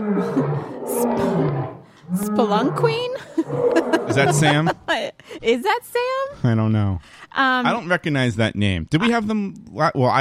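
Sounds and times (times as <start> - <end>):
lion roaring: 0.0 - 4.6
speech: 0.2 - 10.1
laughter: 3.1 - 5.1.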